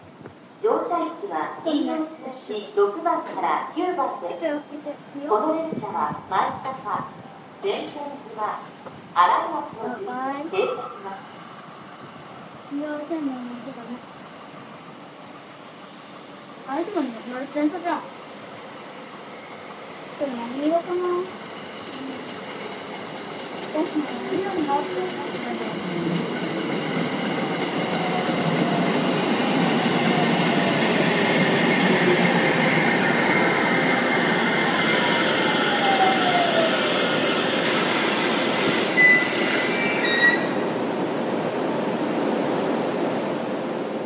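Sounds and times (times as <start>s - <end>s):
train rumbling through a station: 0.0s - 44.0s
speech: 0.6s - 11.3s, 12.7s - 14.1s, 16.7s - 18.1s, 20.2s - 21.4s, 23.8s - 26.3s
high metallic train wheel squeals: 38.6s - 40.6s.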